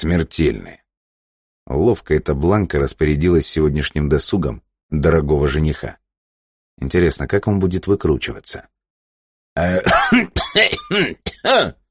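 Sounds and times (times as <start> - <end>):
speech: 0.0 - 0.8, 1.7 - 6.0, 6.8 - 8.8, 9.6 - 11.8
person acting out a fit of coughing: 9.6 - 11.8.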